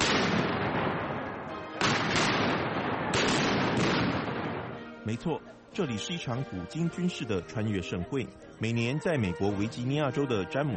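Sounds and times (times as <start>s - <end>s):
17th-century and American Revolutionary War cannons firing at a military history event: 0.0s - 4.9s
speech: 5.1s - 10.7s.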